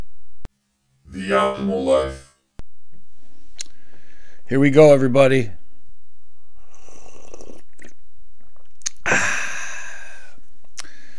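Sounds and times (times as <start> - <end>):
speech: 1.2 - 2.2, 4.5 - 5.6
faint soft mouth noises: 6.6 - 9.1
small breathy slurp of coffee: 6.7 - 8.7.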